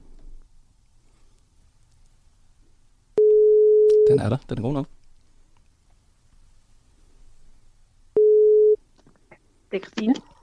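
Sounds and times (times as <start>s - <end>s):
telephone ringing tone while placing a call: 3.2s - 4.1s, 8.2s - 8.8s
speech: 4.1s - 5.0s.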